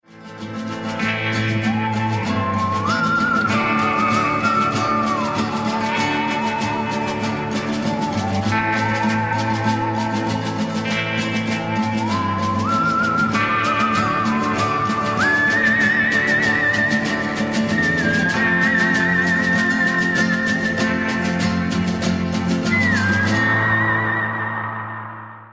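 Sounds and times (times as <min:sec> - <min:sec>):
spaghetti western guitar ringtone: 0:00.0 - 0:25.5.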